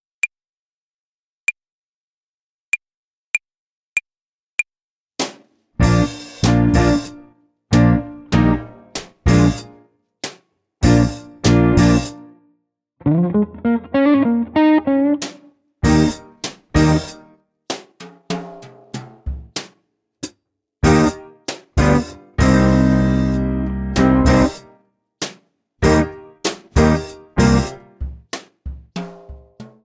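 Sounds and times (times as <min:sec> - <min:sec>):
guitar play-along tempo and rhythm exercise: 0:05.8 - 0:09.8, 0:10.8 - 0:12.3, 0:13.0 - 0:17.9, 0:20.8 - 0:24.7, 0:25.8 - 0:29.8.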